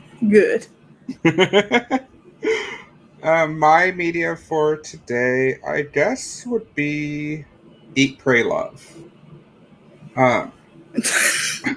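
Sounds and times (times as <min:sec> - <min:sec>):
speech: 0:00.2 - 0:09.1, 0:10.2 - 0:11.7
laughter: 0:01.1 - 0:02.8
person coughing: 0:11.0 - 0:11.7.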